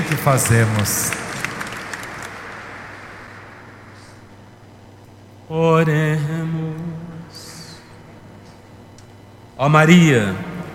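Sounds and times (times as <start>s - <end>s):
crowd applauding in a large room: 0.0s - 4.3s
speech: 0.2s - 1.2s, 5.5s - 6.7s, 9.6s - 10.5s.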